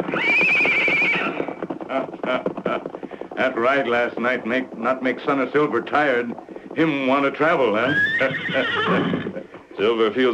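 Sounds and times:
horse neighing: 0.0s - 3.9s, 6.2s - 9.6s
hooves clip-clopping and scuffling: 0.0s - 10.3s
speech: 2.0s - 2.8s, 3.4s - 10.3s.

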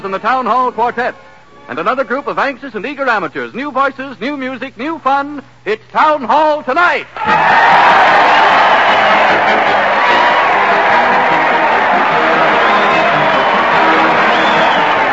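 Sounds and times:
speech: 0.0s - 8.6s, 9.3s - 10.0s
large crowd jumping and cheering: 7.2s - 15.1s
whoops from crowd: 7.2s - 15.1s.

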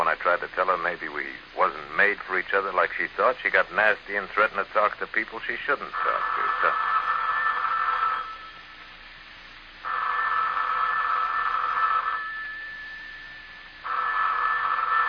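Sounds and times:
speech: 0.2s - 6.9s
telephone ringing with a bright electronic buzz: 5.9s - 8.8s, 9.8s - 15.0s.

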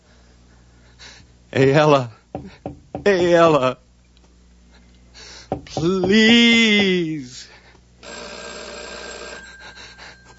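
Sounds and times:
speech: 1.5s - 3.8s, 5.5s - 7.5s
telephone bell ringing: 8.0s - 10.3s.

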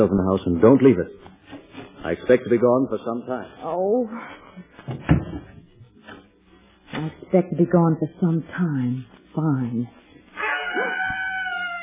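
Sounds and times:
speech: 0.0s - 1.4s, 2.0s - 5.2s, 7.0s - 10.0s
screech owl wavering high-pitched call: 10.4s - 11.8s.

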